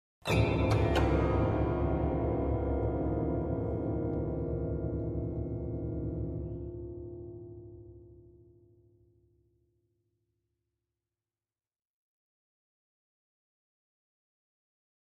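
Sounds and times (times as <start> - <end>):
grand piano strings: 0.3 - 8.0.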